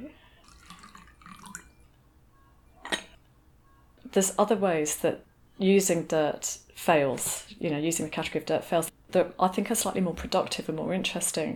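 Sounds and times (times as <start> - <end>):
tea pouring into a cup: 0.4 - 1.9
speech: 4.1 - 11.5.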